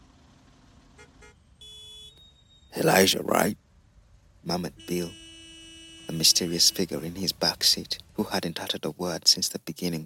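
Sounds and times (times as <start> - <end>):
low traffic rumble: 0.0 - 1.6, 2.7 - 10.0
car horns honking in a traffic jam: 1.0 - 3.1, 4.5 - 8.8
speech: 2.8 - 3.6, 4.4 - 5.2, 6.1 - 10.0.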